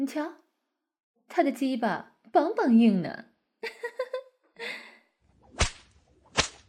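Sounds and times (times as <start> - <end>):
speech: 0.0 - 0.4, 1.3 - 4.8
whip cracks: 5.5 - 6.6.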